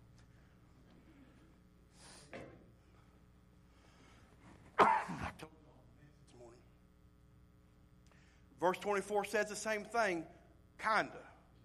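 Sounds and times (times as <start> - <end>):
person coughing: 4.8 - 5.5
speech: 8.6 - 11.3.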